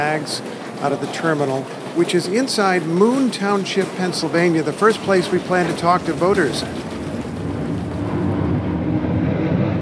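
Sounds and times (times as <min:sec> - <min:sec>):
speech: 0:00.0 - 0:06.9
airplane passing overhead after landing approach: 0:06.0 - 0:09.7.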